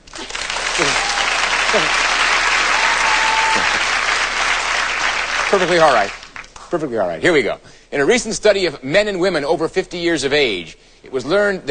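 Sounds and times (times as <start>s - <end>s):
studio audience applause: 0.0s - 6.6s
faint voices and whoops from studio audience: 0.2s - 4.0s
speech: 1.7s - 2.0s, 5.5s - 11.7s.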